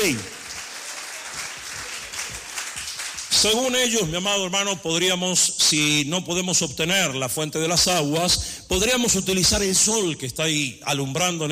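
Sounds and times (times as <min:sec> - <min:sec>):
speech: 0:00.0 - 0:00.3, 0:03.4 - 0:11.5
church congregation applause during a morning worship service: 0:00.0 - 0:04.2.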